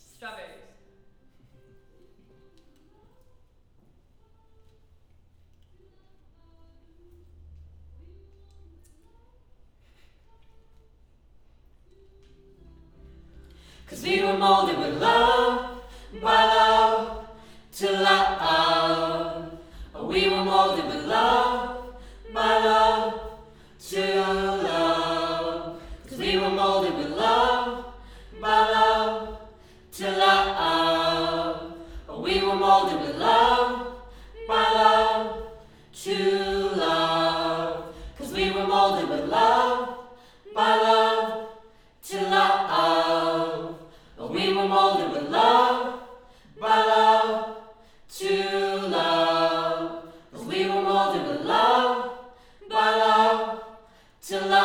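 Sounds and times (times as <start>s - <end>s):
choir singing: 12.6s - 54.6s.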